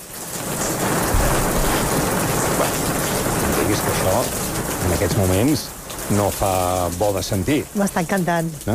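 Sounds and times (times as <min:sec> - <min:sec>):
heavy steady rain: 0:00.0 - 0:08.7
low rumble of thunder: 0:00.1 - 0:07.8
speech: 0:05.0 - 0:08.7.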